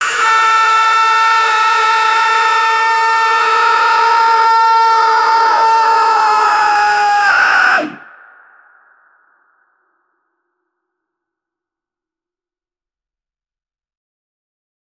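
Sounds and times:
angry prehistoric pterodactyl scream: 0.0 - 8.0.

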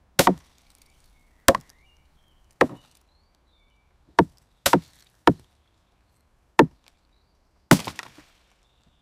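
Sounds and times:
medieval wood chopping, Scottish: 0.2 - 0.6, 1.5 - 1.8, 2.6 - 3.0, 4.1 - 5.4, 6.6 - 6.8, 7.7 - 8.2.

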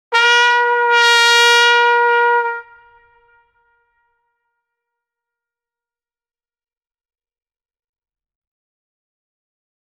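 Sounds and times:
playful trumpet whoop: 0.1 - 3.4.

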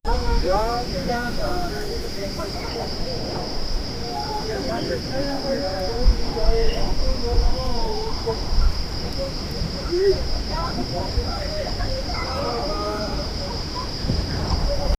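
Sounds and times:
mostly male crowd noise: 0.0 - 14.9.

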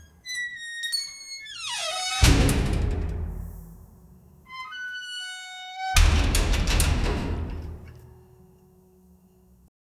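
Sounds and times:
metal door creaking in a warehouse: 0.0 - 3.8, 4.4 - 8.1.

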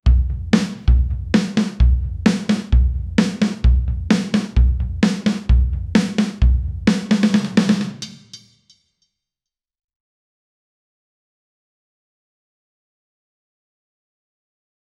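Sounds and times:
drum set: 0.0 - 8.8.

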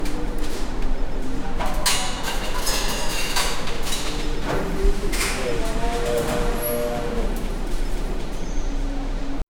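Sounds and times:
busy warehouse: 0.0 - 9.4.

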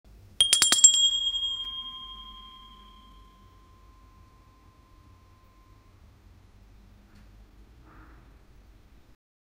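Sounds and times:
bread toaster bell: 0.4 - 5.8.

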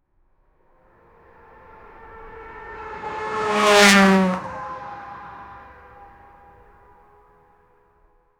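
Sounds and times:
Porsche passing by: 0.8 - 7.1.

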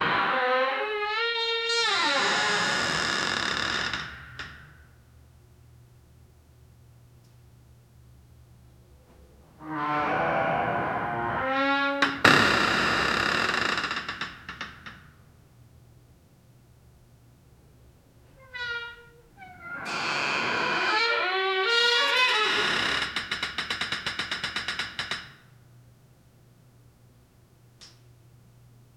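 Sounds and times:
ambient sound in a bunker: 0.0 - 28.9.

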